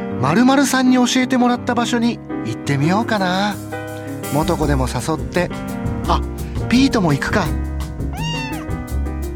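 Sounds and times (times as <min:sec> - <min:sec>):
soft music or ambient hum: 0:00.0 - 0:09.3
speech: 0:00.2 - 0:03.7, 0:04.3 - 0:07.6
cat meowing: 0:08.1 - 0:08.8.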